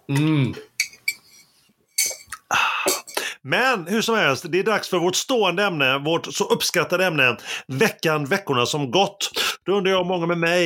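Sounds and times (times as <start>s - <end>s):
speech: 0.1s - 0.7s, 3.4s - 10.6s
glasses of a small cold Irish drink clinking in a toast: 0.8s - 3.2s.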